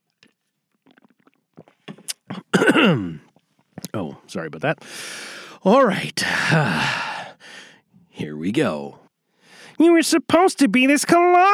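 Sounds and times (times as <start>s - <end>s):
person slurping and gulping water: 0.0s - 8.2s
speech: 2.8s - 3.2s, 4.0s - 7.1s, 8.4s - 9.0s, 9.8s - 11.5s
loud drawn-out satisfied vocal exhale: 4.8s - 5.6s, 6.3s - 7.8s.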